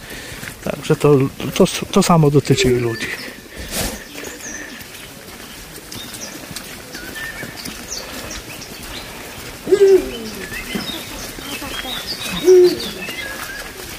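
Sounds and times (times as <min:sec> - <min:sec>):
several people's footsteps crunching and rustling through a forest: 0:00.0 - 0:13.9
speech: 0:00.6 - 0:03.3
short low hoot-like tones: 0:09.6 - 0:10.7, 0:12.3 - 0:13.0.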